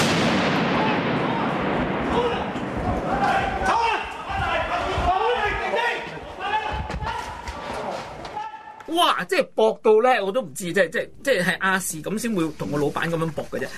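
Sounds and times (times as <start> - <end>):
gunshot cracks in news footage: 0.0 - 3.5
people talking and shouting: 0.6 - 9.2
speech: 9.2 - 13.7.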